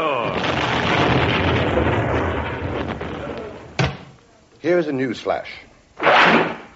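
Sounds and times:
comic explosion effect boom: 0.2s - 4.1s
sharp crack: 0.2s - 4.2s, 6.0s - 6.7s
speech: 4.6s - 6.4s.

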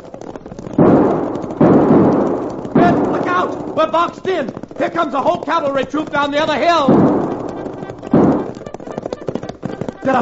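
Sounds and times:
Winchester army rifles firing during a fight: 0.7s - 4.2s, 6.8s - 9.0s
speech: 2.9s - 7.2s.

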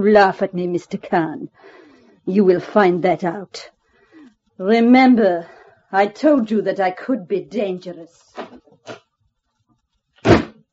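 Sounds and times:
speech: 0.0s - 3.8s, 4.6s - 9.0s
door slamming shut: 10.2s - 10.6s.

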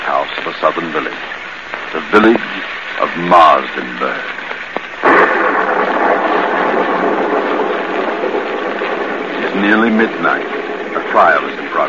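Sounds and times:
speech: 0.6s - 4.4s, 9.6s - 11.8s
thunder in a rainy lightning storm: 5.0s - 11.8s.

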